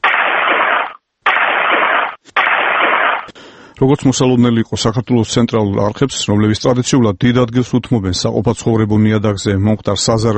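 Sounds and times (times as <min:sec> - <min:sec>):
honorary gun salute volleys fired by a ministry of defence honour guard at a funeral: 0:00.0 - 0:03.4
speech: 0:03.8 - 0:10.3.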